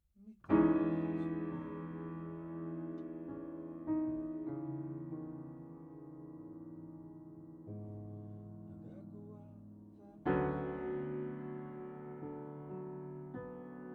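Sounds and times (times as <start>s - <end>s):
low piano notes: 0.4s - 13.9s.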